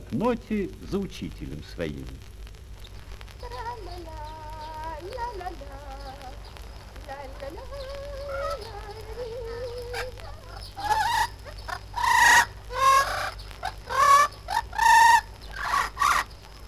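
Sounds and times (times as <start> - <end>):
speech: 0.1 - 2.3, 5.0 - 6.5, 7.1 - 8.8
blue-fronted amazon parrot singing a human-like melody: 3.4 - 16.4
blue-fronted amazon parrot squawking: 9.4 - 16.3.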